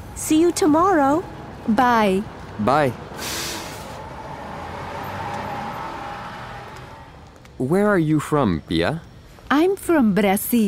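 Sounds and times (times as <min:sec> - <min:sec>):
bus engine idling at a bus stop: 0:00.0 - 0:09.0
traffic noise: 0:00.0 - 0:10.6
speech: 0:00.3 - 0:03.0, 0:07.6 - 0:10.6.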